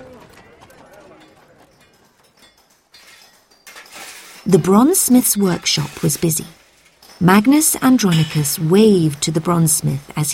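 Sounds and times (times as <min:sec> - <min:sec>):
horse hooves clip-clopping on a busy street in Rome: 0:00.0 - 0:04.5
rumble of carts carrying people and goods in Rome: 0:00.0 - 0:10.3
speech: 0:04.5 - 0:06.6, 0:07.2 - 0:10.3.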